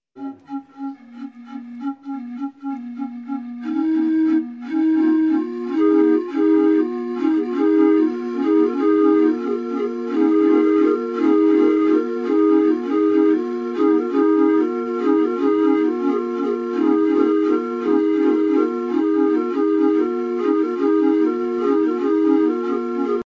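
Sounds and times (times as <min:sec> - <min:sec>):
Ede flute polyphony from Vietnam: 0:00.2 - 0:23.2.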